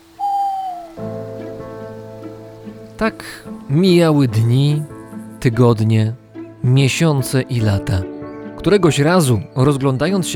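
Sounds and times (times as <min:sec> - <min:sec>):
owl hooting: 0:00.0 - 0:02.0
soft sustained ambient tones: 0:00.0 - 0:06.4
speech: 0:03.0 - 0:10.3.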